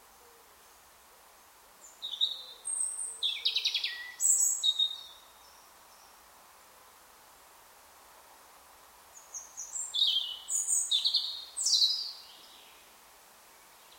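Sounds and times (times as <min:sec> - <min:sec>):
soft steady background hiss: 0:00.0 - 0:13.9
European robin Erithacus rubecula singing: 0:01.8 - 0:06.2, 0:09.2 - 0:12.9.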